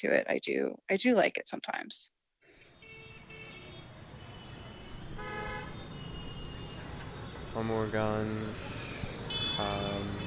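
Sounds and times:
speech: 0:00.0 - 0:02.2, 0:07.6 - 0:08.8, 0:09.6 - 0:10.2
nighttime city traffic rumble: 0:02.6 - 0:10.2
car horns honking: 0:02.7 - 0:08.4, 0:09.2 - 0:10.2.

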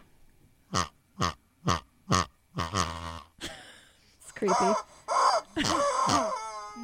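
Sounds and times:
pig oinking: 0:00.7 - 0:03.3, 0:04.5 - 0:06.5
speech: 0:04.4 - 0:04.9, 0:05.6 - 0:06.8
strange warbling chicken call: 0:04.5 - 0:06.8.

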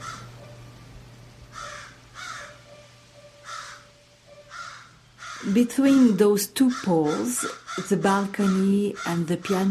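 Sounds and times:
raven cawing: 0:00.0 - 0:00.3, 0:01.5 - 0:02.8, 0:03.4 - 0:09.6
speech: 0:05.4 - 0:09.6.

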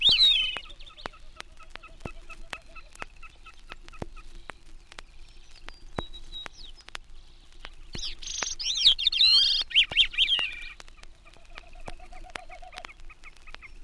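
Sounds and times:
Gray-cheeked Thrush thin calls: 0:00.0 - 0:04.6, 0:08.0 - 0:13.8.

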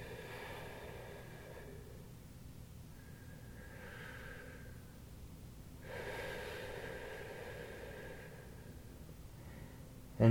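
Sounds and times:
slow deep breathing during a guided breathing exercise: 0:00.0 - 0:05.2, 0:05.8 - 0:10.0.

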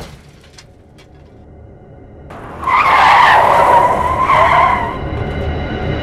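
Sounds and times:
car tires skidding: 0:02.3 - 0:05.9.

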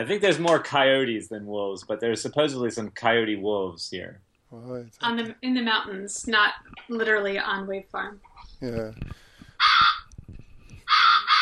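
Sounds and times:
speech: 0:00.0 - 0:09.2
crows cawing: 0:09.6 - 0:10.0, 0:10.9 - 0:11.4.

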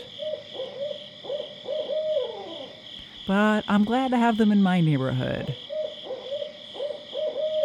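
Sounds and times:
owls of a northeastern U.S. species giving cackling hoots: 0:00.0 - 0:02.8, 0:05.6 - 0:07.6
steady high insect drone: 0:00.0 - 0:07.6
speech: 0:03.3 - 0:05.6.

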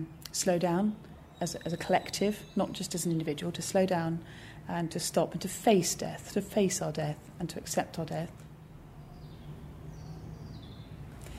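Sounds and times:
speech: 0:00.0 - 0:08.5
distant traffic rumble: 0:00.0 - 0:11.3
birds chirping and whistling: 0:00.1 - 0:04.5, 0:08.1 - 0:11.3.

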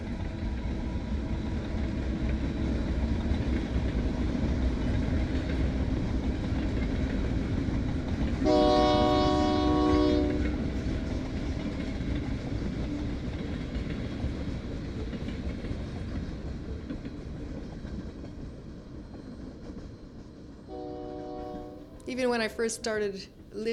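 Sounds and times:
train rumbling past in the town of Bruno: 0:00.0 - 0:23.7
loud train horn blast: 0:08.4 - 0:10.6, 0:20.7 - 0:22.0
speech: 0:22.2 - 0:23.7.

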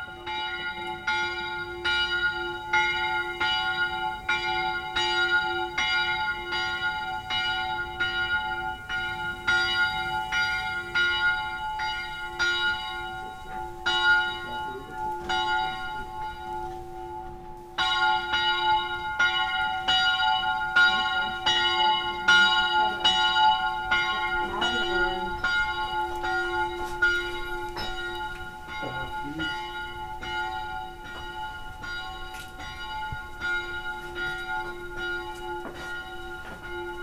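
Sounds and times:
bells ringing with a long reverberating decay: 0:00.0 - 0:37.0.

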